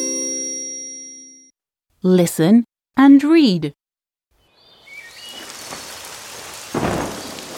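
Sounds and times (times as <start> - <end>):
speech: 2.0 - 3.8
steady rain falling: 4.9 - 7.5
crackling burst: 5.4 - 7.5.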